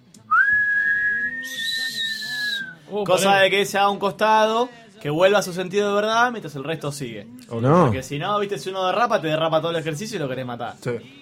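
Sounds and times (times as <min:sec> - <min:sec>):
person whistling: 0:00.3 - 0:02.8
speech: 0:02.9 - 0:11.2.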